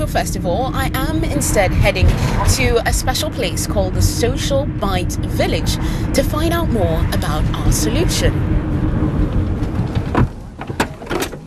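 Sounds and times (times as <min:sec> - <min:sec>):
speech: 0:00.0 - 0:08.5
low outdoor rumble by the seaside: 0:00.0 - 0:11.4
car door opening and shutting: 0:09.4 - 0:11.4.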